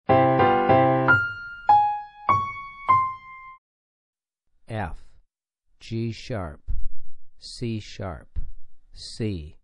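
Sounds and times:
four-note major piano melody for ear training: 0.1 - 3.6.

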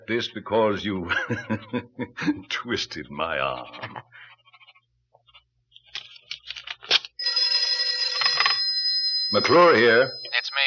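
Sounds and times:
speech: 0.1 - 4.1, 9.3 - 10.6
laughter: 1.0 - 2.5, 3.7 - 4.1
telephone bell ringing with a sustained metallic jangle: 7.2 - 10.6.

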